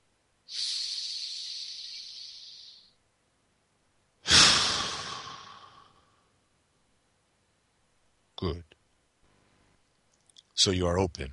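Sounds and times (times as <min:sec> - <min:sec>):
slow deep breath drawn in during a guided breathing exercise: 0:00.5 - 0:02.9, 0:04.3 - 0:06.2
speech: 0:08.4 - 0:08.7, 0:10.6 - 0:11.3.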